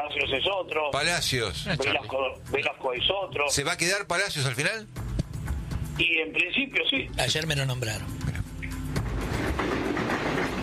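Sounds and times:
speech: 0:00.1 - 0:05.0, 0:06.0 - 0:08.2
train wheels rumbling on rails: 0:09.0 - 0:10.6.

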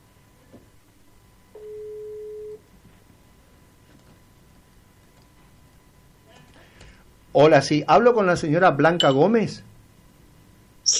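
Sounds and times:
faint hiss: 0:00.0 - 0:10.9
telephone ringing tone on an outgoing call: 0:01.6 - 0:02.6
speech: 0:07.4 - 0:09.7.

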